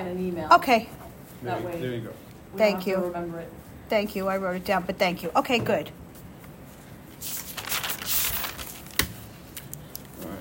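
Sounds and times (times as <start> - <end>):
speech: 0.0 - 6.0
paper sheets rustling and crinkling during a meeting: 6.7 - 10.3
paper snap: 7.3 - 10.1.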